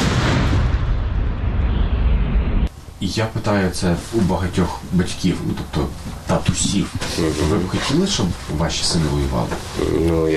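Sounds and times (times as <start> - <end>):
heavy artillery shot booming: 0.0 - 2.7
speech: 3.0 - 10.3.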